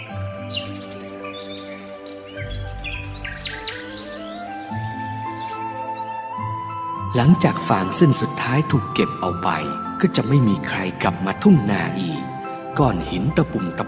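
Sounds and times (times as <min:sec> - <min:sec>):
many kinds of birds chirping and calling over a ripe golden rice field: 0:00.0 - 0:13.8
speech: 0:07.1 - 0:13.8.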